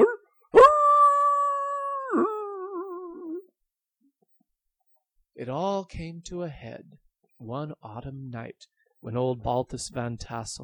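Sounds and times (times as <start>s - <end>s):
dog howling under a window during singing lessons: 0.0s - 3.5s
speech: 5.4s - 10.6s.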